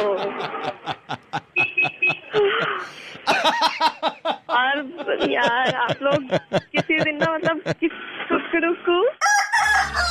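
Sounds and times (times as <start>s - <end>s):
laughter: 0.0s - 7.9s
speech: 5.1s - 6.6s
rooster crowing: 9.2s - 10.1s.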